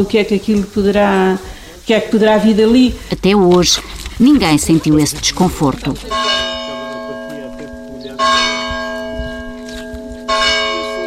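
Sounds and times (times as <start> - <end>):
speech: 0.0 - 6.6
church bell tolling for mass: 6.0 - 11.0.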